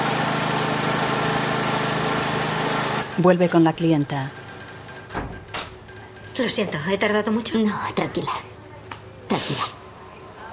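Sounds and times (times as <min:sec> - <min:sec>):
portable generator engine running: 0:00.0 - 0:07.4
speech: 0:03.2 - 0:04.4, 0:06.4 - 0:08.5, 0:09.3 - 0:09.8.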